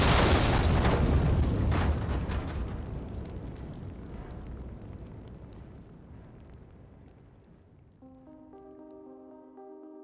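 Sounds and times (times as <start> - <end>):
loud rumbling explosion: 0.0 - 6.7.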